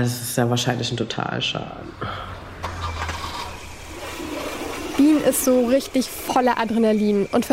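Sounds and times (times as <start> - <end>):
speech: 0.0 - 2.4, 5.0 - 7.5
car engine cranking without starting: 2.0 - 6.9.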